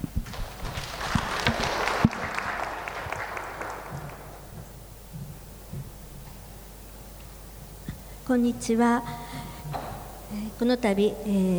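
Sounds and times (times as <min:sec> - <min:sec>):
room full of people applauding a speaker: 0:00.3 - 0:04.7
speech: 0:08.3 - 0:09.3, 0:10.6 - 0:11.5.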